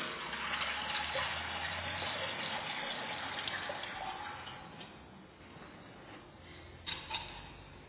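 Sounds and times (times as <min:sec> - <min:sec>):
water poured into a stone baptismal font: 0:00.0 - 0:04.7.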